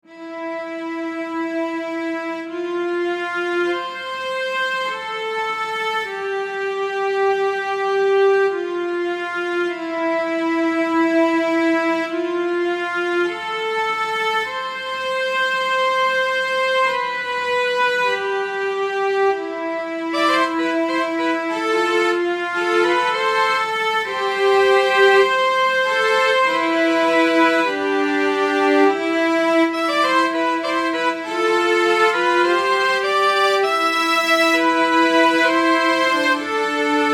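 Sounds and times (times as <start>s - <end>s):
cello section: 0.0s - 37.1s.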